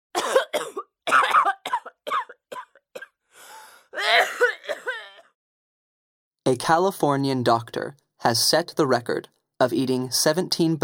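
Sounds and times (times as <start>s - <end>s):
harsh raspy wheezing coughs: 0.2s - 3.2s, 3.8s - 5.3s
breathy gasp: 3.3s - 4.1s
speech: 6.5s - 10.8s.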